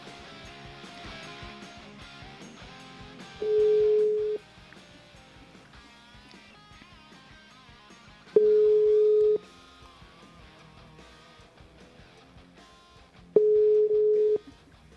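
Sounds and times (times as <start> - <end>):
music: 0.0 - 14.9
ringback tones from an outgoing telephone call being dialed: 3.4 - 4.4, 8.4 - 9.5, 13.4 - 14.5.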